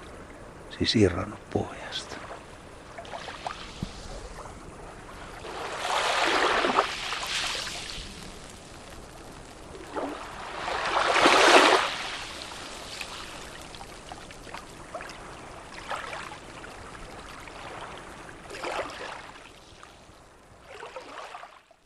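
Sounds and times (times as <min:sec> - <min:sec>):
fine gritty hiss of shifting sand grains: 0:00.0 - 0:14.1
small waves washing along a sandy beach: 0:00.0 - 0:21.8
speech: 0:00.7 - 0:02.2
small water splashes: 0:02.1 - 0:04.4, 0:05.1 - 0:21.8.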